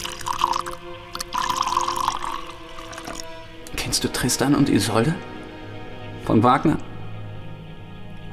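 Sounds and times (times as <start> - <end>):
drink pouring into a glass: 0.0 - 3.5
speech: 4.0 - 5.3, 6.3 - 6.9.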